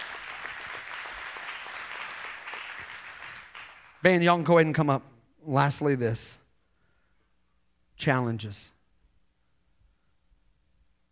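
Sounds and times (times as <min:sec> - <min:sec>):
crowd applauding: 0:00.0 - 0:04.1
speech: 0:04.0 - 0:06.4, 0:08.0 - 0:08.8.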